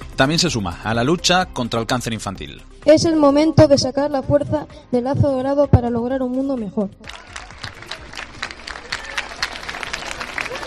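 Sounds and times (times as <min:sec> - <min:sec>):
speech: 0:00.2 - 0:07.3
crowd of students clapping: 0:07.0 - 0:10.6.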